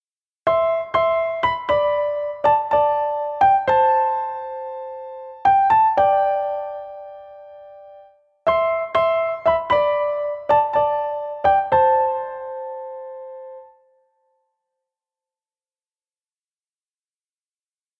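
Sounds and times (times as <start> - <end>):
piano melody: 0.5 - 14.1.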